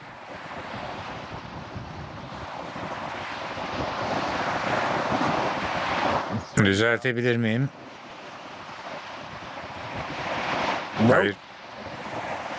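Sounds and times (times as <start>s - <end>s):
strong wind roaring across the microphone: 0.0s - 6.6s, 7.7s - 12.5s
steady wash of waves: 2.5s - 12.5s
speech: 6.6s - 7.8s, 11.0s - 11.4s.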